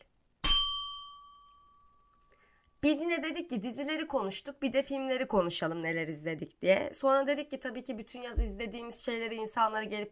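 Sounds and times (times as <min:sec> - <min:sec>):
bright bell ding: 0:00.4 - 0:02.2
speech: 0:02.8 - 0:10.1.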